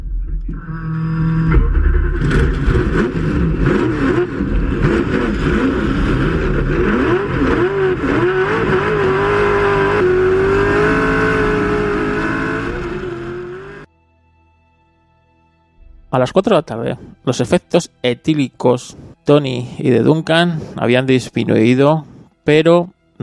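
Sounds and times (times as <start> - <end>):
race car engines roaring at the start of the Le Mans race: 0.2 - 13.9
speech: 16.2 - 23.2.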